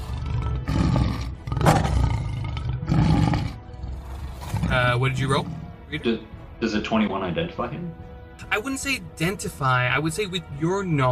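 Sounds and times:
lion roaring: 0.0s - 5.8s
speech: 4.8s - 11.1s.

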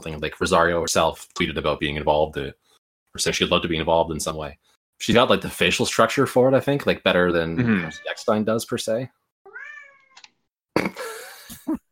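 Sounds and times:
speech: 0.0s - 2.6s, 3.2s - 9.2s
cat meowing: 7.6s - 8.2s, 9.5s - 10.2s
cat chirp: 9.5s - 10.2s.

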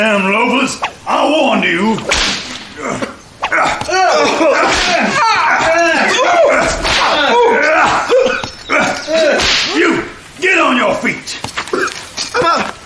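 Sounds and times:
speech: 0.0s - 3.8s
voices shouting: 0.0s - 12.8s
whip lashes striking a person: 2.0s - 2.7s, 4.6s - 5.2s, 6.8s - 7.2s, 9.3s - 9.8s.

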